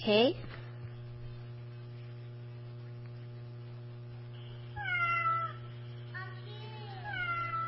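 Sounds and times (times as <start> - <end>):
speech: 0.0 - 0.5
steady low hum: 0.0 - 7.6
cat meowing: 4.8 - 5.6, 7.0 - 7.6.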